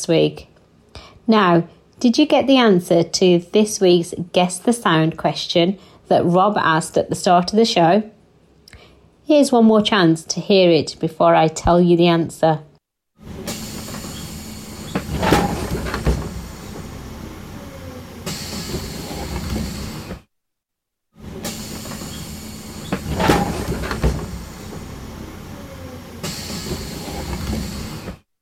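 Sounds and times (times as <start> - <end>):
speech: 0.0 - 0.5, 1.3 - 8.2, 9.3 - 13.6
engine rumbling: 13.2 - 20.2, 21.2 - 28.2
bus door opening with a mechanical clunk and hissing release: 13.2 - 20.3, 21.2 - 28.2.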